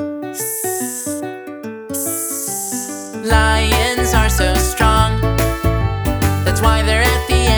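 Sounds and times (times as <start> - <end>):
speech: 0.3 - 0.7
voice imitating a snake's hiss: 0.4 - 1.2, 2.0 - 3.3
bright plucked musical accompaniment with a bouncy melody: 3.2 - 7.5.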